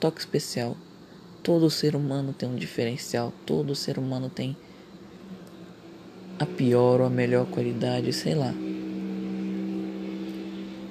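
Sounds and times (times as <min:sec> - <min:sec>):
speech: 0:00.0 - 0:04.7, 0:06.4 - 0:08.7
motorcycle engine passing by outside: 0:05.0 - 0:10.8.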